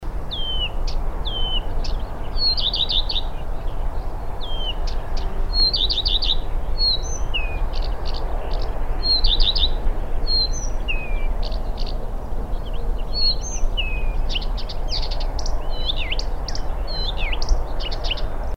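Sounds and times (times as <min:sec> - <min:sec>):
male bird mimicry song: 0:00.3 - 0:03.4, 0:04.4 - 0:12.0, 0:12.6 - 0:18.4.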